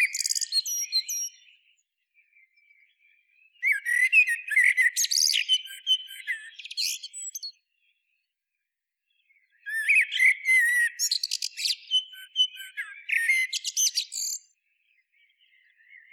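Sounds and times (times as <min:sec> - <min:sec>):
Common blackbird Turdus merula chirps, whistles and twitters: 0:00.0 - 0:01.5, 0:03.6 - 0:07.6, 0:09.6 - 0:14.5.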